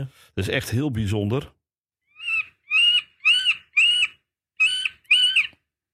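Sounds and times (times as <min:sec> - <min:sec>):
speech: 0:00.0 - 0:01.6
middle spotted woodpecker nasal squealing calls: 0:02.1 - 0:05.6.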